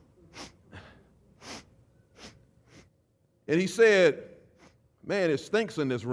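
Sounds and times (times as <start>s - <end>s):
voice imitating a grandfather sniffing through the nose: 0.3s - 3.0s
speech: 3.5s - 4.3s, 5.0s - 6.1s.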